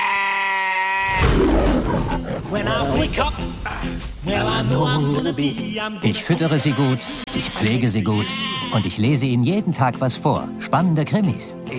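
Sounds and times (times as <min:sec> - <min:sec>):
herd of sheep bleating: 0:00.0 - 0:01.2, 0:08.1 - 0:09.0
speech: 0:02.1 - 0:11.7.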